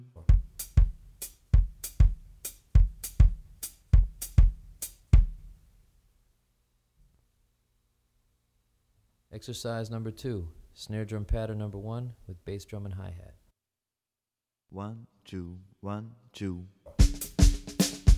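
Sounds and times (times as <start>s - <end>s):
baiao patterns on drum kit: 0.3s - 5.7s, 16.9s - 18.1s.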